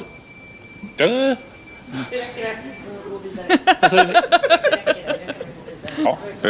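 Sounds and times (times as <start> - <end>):
high-pitched electronic alarm tone from a social distancing proximity tag: 0.0 - 4.3
several people talking and laughing loudly: 0.8 - 6.4
speech: 0.9 - 4.8, 6.0 - 6.4.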